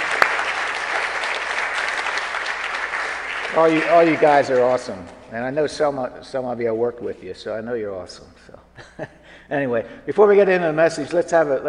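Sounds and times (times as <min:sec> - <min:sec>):
audience applauding: 0:00.0 - 0:05.0
speech: 0:03.5 - 0:11.6.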